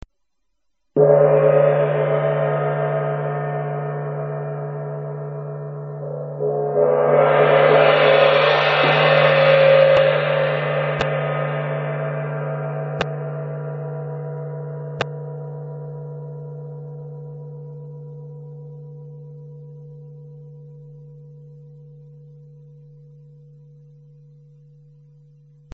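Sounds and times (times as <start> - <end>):
tam-tam: 1.0 - 16.2.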